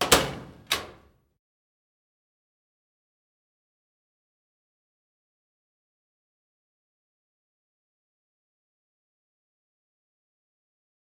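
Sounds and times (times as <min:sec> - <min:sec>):
locker door opening: 0:00.0 - 0:01.1.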